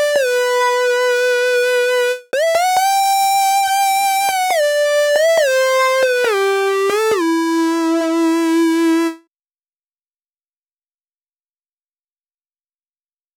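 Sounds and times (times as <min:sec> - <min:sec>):
dry main lead synth melody in E minor: 0:00.2 - 0:09.2.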